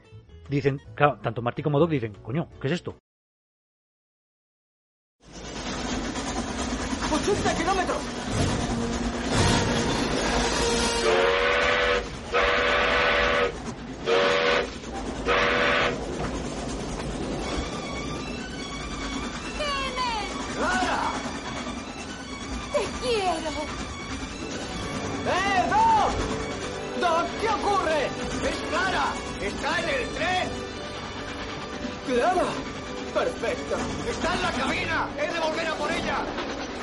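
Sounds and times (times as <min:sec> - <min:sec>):
speech: 0:00.5 - 0:03.0
moving steam train rumbling: 0:05.2 - 0:36.8
steam train whistle blowing: 0:10.0 - 0:16.1.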